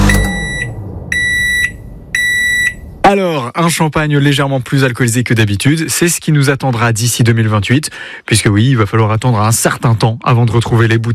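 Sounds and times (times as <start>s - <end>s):
microwave oven beeping: 0.0s - 2.8s
speech: 3.1s - 11.1s.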